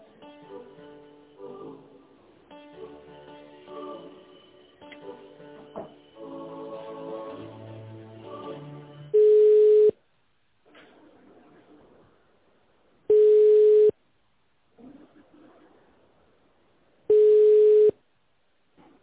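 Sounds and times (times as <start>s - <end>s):
telephone line tone while a call is being transferred: 9.2s - 10.0s, 13.1s - 14.0s, 17.1s - 18.0s.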